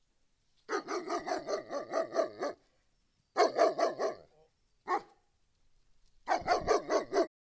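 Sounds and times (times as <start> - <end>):
dog barking: 0.7 - 2.6, 3.4 - 5.2, 6.3 - 7.3.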